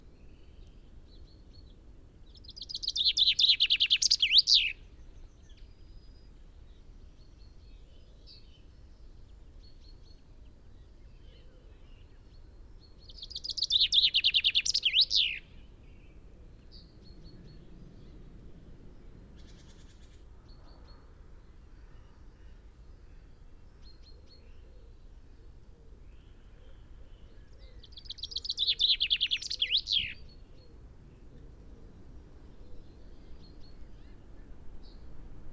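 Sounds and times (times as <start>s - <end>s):
Common Chaffinch Fringilla coelebs in Ryedale: 2.6s - 4.8s, 13.2s - 15.4s, 28.0s - 30.2s.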